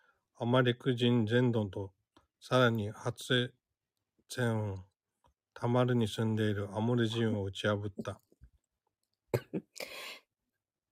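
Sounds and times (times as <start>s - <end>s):
speech: 0.4s - 3.6s, 4.3s - 4.9s, 5.6s - 8.2s
person coughing sharply: 9.4s - 10.0s.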